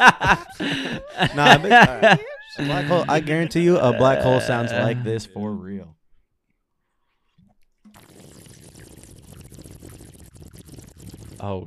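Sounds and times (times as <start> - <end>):
laughter: 0.0 - 5.4
speech: 0.0 - 6.0, 11.4 - 11.6
water bubbling and gurgling in a bong: 7.9 - 11.6.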